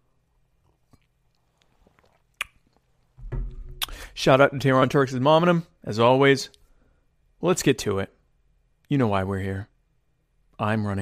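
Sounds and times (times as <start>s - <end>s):
wet mouth clicks: 0.9s - 2.9s, 3.7s - 4.1s
speech: 4.1s - 6.6s, 7.4s - 8.2s, 8.9s - 9.7s, 10.6s - 11.0s.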